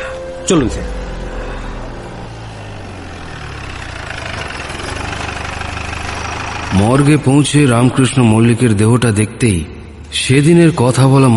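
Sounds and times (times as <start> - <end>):
car engine idling: 0.0 - 9.0
speech: 0.5 - 1.1, 6.7 - 11.3.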